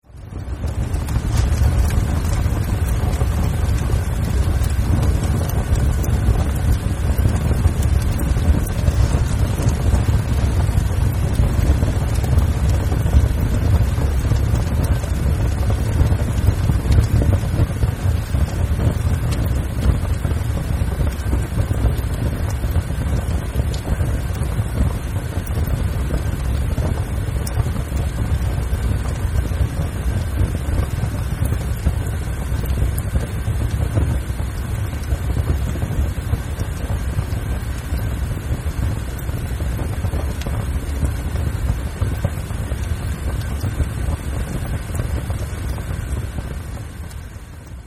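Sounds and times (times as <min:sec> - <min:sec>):
medium fire burning paper inside a fireplace: 0:00.0 - 0:47.8.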